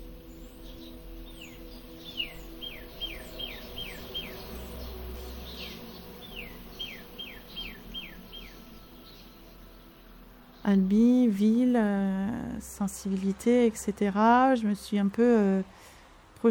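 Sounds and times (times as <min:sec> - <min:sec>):
steady high insect-like buzz: 0:00.0 - 0:11.7
birds chirping outdoors: 0:00.0 - 0:15.6
low ambient hum: 0:00.0 - 0:16.5
speech: 0:10.7 - 0:16.5.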